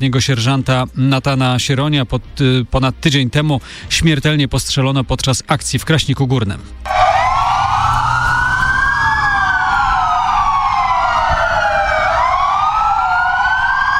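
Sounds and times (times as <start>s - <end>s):
speech: 0.0s - 7.0s
police car sirens wailing in tribute: 6.8s - 13.9s.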